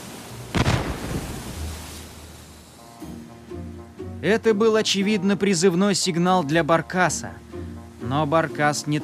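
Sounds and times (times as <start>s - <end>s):
steady wash: 0.0s - 9.0s
cannon shot fired from a ship: 0.5s - 1.6s
speech: 4.2s - 7.5s, 8.1s - 9.0s.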